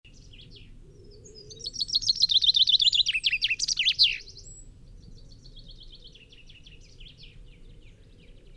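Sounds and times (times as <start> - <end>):
common chaffinch Fringilla coelebs song: 1.6 - 4.3.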